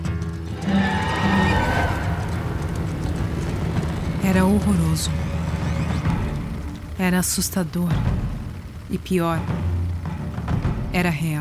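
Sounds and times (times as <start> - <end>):
steady low rumbling background: 0.3 - 11.3
horse whinnying: 0.5 - 6.7
speech: 4.4 - 5.3, 7.0 - 8.3, 8.9 - 9.8, 10.9 - 11.3.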